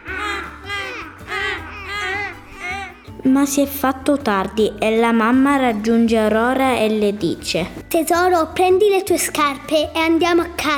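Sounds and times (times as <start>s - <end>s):
seagulls crying over a sandy beach: 0.0s - 3.1s
speech: 3.2s - 10.7s.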